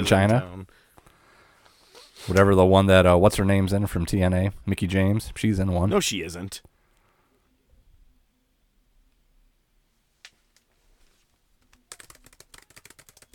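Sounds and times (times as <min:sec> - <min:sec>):
speech: 0:00.0 - 0:00.7, 0:02.3 - 0:06.7
furious typing on a keyboard: 0:11.6 - 0:13.3.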